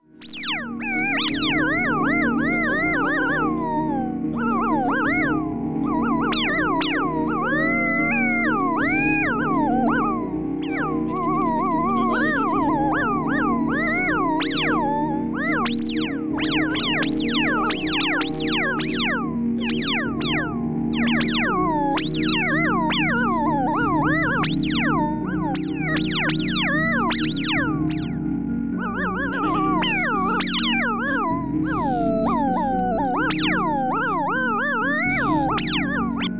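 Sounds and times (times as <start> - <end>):
improvised music: 0.2 - 28.2, 28.8 - 36.3.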